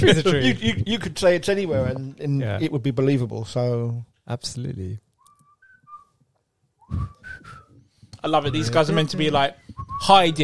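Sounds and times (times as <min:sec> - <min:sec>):
speech: 0:00.0 - 0:05.0, 0:08.2 - 0:10.4
soldiers whistling a tune: 0:05.2 - 0:08.0, 0:09.6 - 0:10.4.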